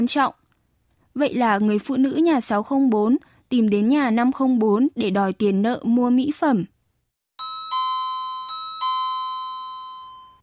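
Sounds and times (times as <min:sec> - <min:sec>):
speech: 0:00.0 - 0:00.4, 0:01.2 - 0:06.7
electronic doorbell chiming: 0:07.4 - 0:10.4.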